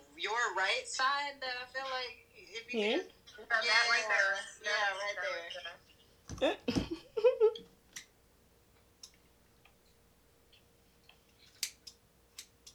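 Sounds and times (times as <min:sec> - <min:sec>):
speech: 0:00.2 - 0:07.4
scissors snipping hair: 0:11.4 - 0:12.7.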